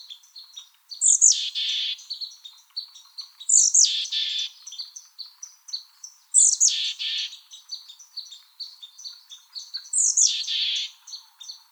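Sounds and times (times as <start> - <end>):
Mexican Chickadee calls: 0.1 - 2.4, 3.4 - 4.8, 6.4 - 8.1, 8.8 - 11.6.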